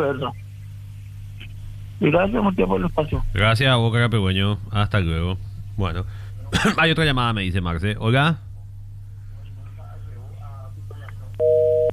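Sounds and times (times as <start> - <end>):
speech: 0.0 - 0.4, 2.0 - 8.4
low constant hum: 0.0 - 11.9
telephone busy tone on a call-in line after the caller hung up: 11.4 - 11.9.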